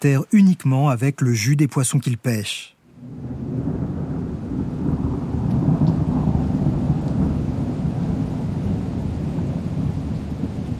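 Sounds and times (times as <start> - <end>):
speech: 0.0 - 3.3
heavy tropical rain pouring: 2.9 - 10.7.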